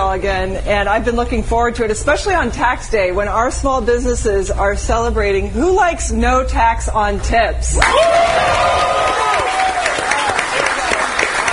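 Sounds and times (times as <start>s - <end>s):
speech: 0.1s - 9.1s
whoops and raised voices at a rally: 7.8s - 10.4s
crowd cheering at a rally: 7.8s - 11.5s.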